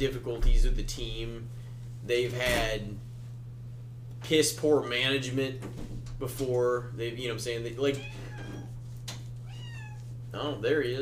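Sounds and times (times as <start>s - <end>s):
speech: 0.0s - 3.1s, 4.2s - 8.5s, 10.3s - 11.0s
steady low electrical hum: 0.0s - 11.0s
male cat meowing: 7.9s - 8.8s, 9.4s - 10.2s.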